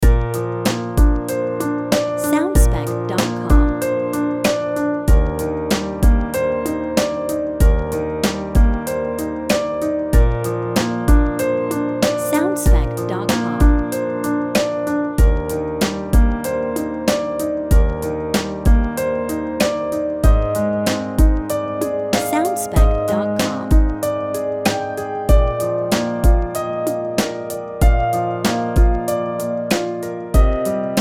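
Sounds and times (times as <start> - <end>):
drums: 0.0 - 14.0, 14.6 - 30.9
sweet piano loop: 0.0 - 30.9.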